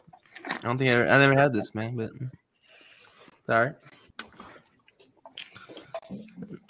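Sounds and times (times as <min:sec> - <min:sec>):
speech: 0:00.6 - 0:02.4, 0:03.5 - 0:04.0
person sipping a drink with wet slurping: 0:04.2 - 0:06.6.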